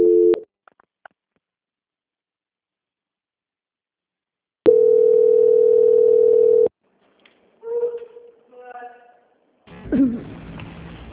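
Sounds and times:
steady mid-pitched telephone tone during a call transfer: 0.0s - 0.4s, 4.7s - 6.7s
telephone beep during a call transfer: 4.7s - 6.7s.

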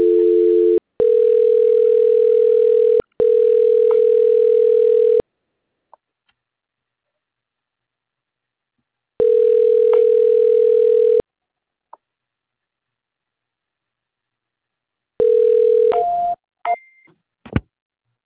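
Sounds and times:
telephone line tone while a call is transferred: 0.0s - 5.2s, 9.2s - 11.2s, 15.2s - 16.4s.

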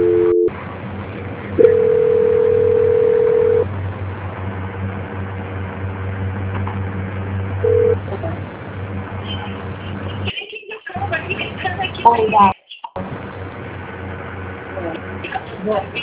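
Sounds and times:
telephone call-transfer tone on a phone line: 0.0s - 0.5s, 1.6s - 3.6s, 7.6s - 8.0s
low continuous phone line hum: 0.0s - 16.0s.

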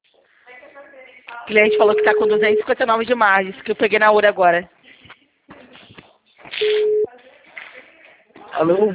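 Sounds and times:
telephone busy-tone beep after a dropped call: 1.5s - 2.7s, 6.6s - 7.1s
speech: 1.5s - 4.8s, 8.6s - 8.9s.

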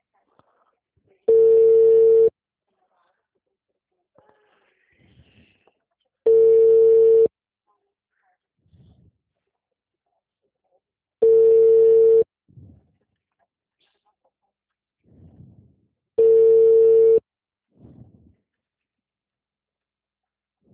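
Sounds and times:
telephone ringback tone from a phone call before voicemail: 1.3s - 2.3s, 6.3s - 7.3s, 11.2s - 12.2s, 16.2s - 17.2s.

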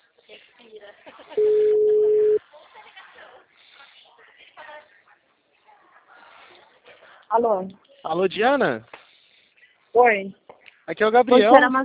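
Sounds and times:
ringback tone of an outgoing telephone call: 1.4s - 2.4s
voices talking over a narrow phone-like line: 1.4s - 2.4s
speech: 7.4s - 8.9s, 10.0s - 11.8s.

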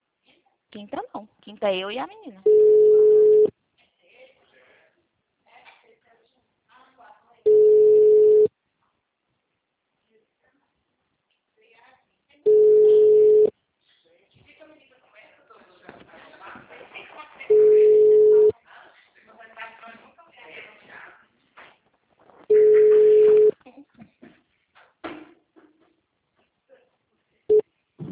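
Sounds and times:
speech: 0.7s - 2.9s
telephone line tone while a dropped call is redialed: 2.4s - 3.5s, 7.5s - 8.5s, 12.5s - 13.5s, 17.5s - 18.5s, 22.5s - 23.5s.

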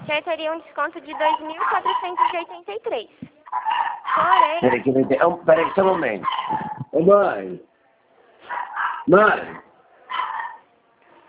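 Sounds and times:
speech: 0.1s - 7.7s, 8.4s - 9.6s
dog barking with sharp yelping bark: 1.1s - 2.5s, 3.5s - 4.9s, 5.5s - 6.8s, 8.4s - 9.1s.

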